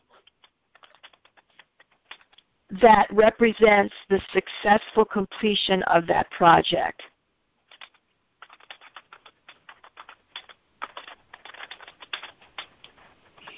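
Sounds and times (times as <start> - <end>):
typing on a computer keyboard: 0.2 - 2.4, 7.7 - 13.5
speech: 2.7 - 7.1.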